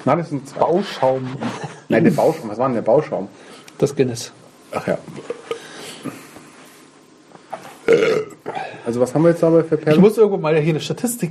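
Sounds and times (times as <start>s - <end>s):
speech: 0.0s - 5.4s, 8.9s - 11.2s
deep rumbling burp: 7.8s - 8.7s.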